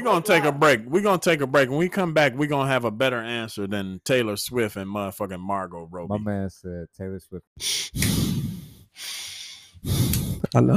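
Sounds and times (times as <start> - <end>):
speech: 0.0 - 8.4, 9.0 - 10.7
person breathing hard: 7.6 - 10.5.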